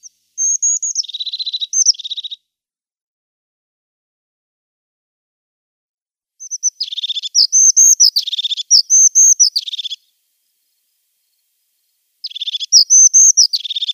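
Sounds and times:
crested tit singing buzzy rattles: 0:00.0 - 0:02.4, 0:06.4 - 0:10.0, 0:12.2 - 0:13.9.

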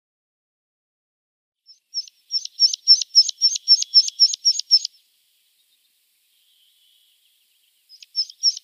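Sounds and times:
meadow pipit singing: 0:01.7 - 0:08.6.

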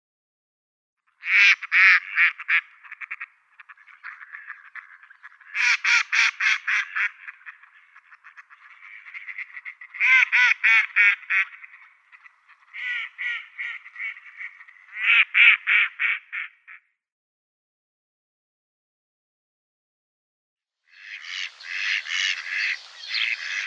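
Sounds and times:
mallard display calls: 0:01.2 - 0:16.8, 0:20.9 - 0:23.6.

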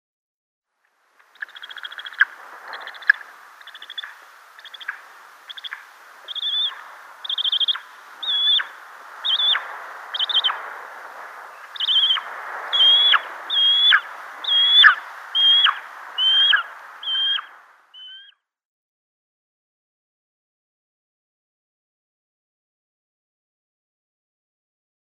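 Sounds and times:
Spanish Imperial Eagle nestling calling: 0:01.4 - 0:10.6, 0:11.5 - 0:18.3.

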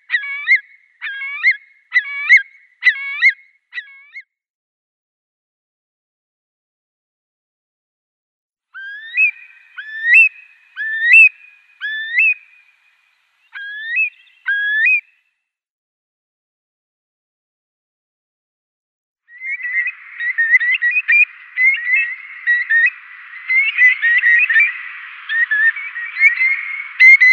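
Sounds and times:
Eurasian curlew calls: 0:00.0 - 0:04.3, 0:08.8 - 0:15.2, 0:19.3 - 0:27.3.

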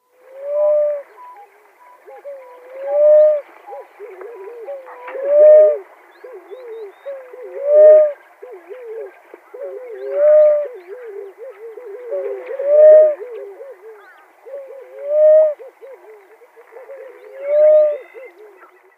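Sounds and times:
male Namaqua Dove display call: 0:00.0 - 0:18.9.

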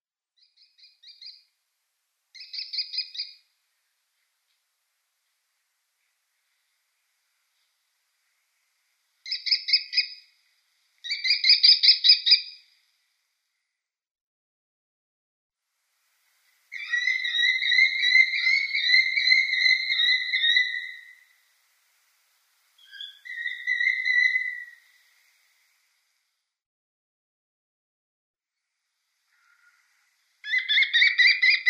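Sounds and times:
American kestrel: 0:00.4 - 0:01.4, 0:02.4 - 0:03.4, 0:09.2 - 0:10.3, 0:11.0 - 0:12.6, 0:16.7 - 0:21.3, 0:22.8 - 0:25.1, 0:29.3 - 0:31.6.

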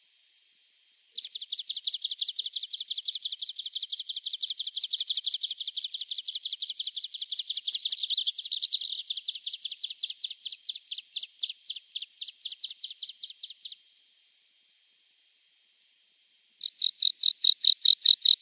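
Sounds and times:
Water Pipit singing: 0:01.2 - 0:13.8, 0:16.6 - 0:18.3.

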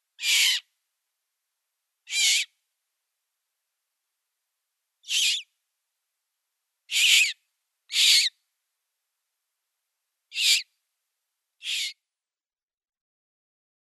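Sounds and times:
Eurasian magpie nestlings' hoarse hissing begging calls: 0:00.2 - 0:00.6, 0:02.1 - 0:02.5, 0:05.1 - 0:05.4, 0:06.9 - 0:08.3, 0:10.3 - 0:10.6, 0:11.6 - 0:12.0.

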